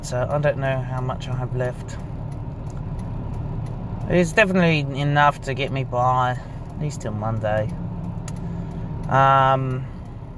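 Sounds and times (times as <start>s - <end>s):
speech: 0.0s - 2.1s, 4.1s - 7.8s, 9.1s - 9.9s
road and engine noise inside an old Buick Park Avenue while driving: 0.0s - 10.3s.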